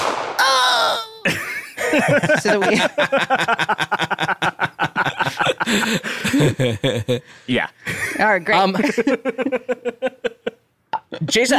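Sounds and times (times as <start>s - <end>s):
gunshot sound effect with ringing metallic tail: 0.0s - 0.6s
laughter: 1.1s - 11.5s
speech: 2.0s - 3.8s, 5.7s - 10.2s, 11.2s - 11.5s.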